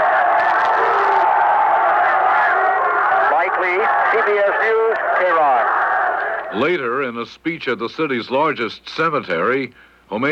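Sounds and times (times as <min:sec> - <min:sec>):
whoops and shouts rising from the crowd: 0:00.0 - 0:04.2
huge crowd cheering in a street in Tehran Iran in support of the revolution: 0:00.0 - 0:06.6
speech: 0:06.5 - 0:10.3.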